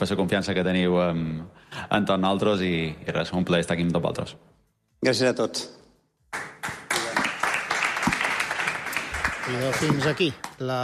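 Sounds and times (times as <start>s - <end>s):
speech: 0.0s - 6.8s, 9.5s - 10.8s
audience applause after press conference: 6.4s - 10.6s.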